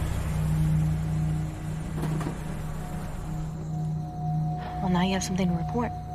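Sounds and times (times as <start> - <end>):
car engine idling while parallel parking in a motel parking lot: 0.0 - 4.8
speech: 4.9 - 6.0.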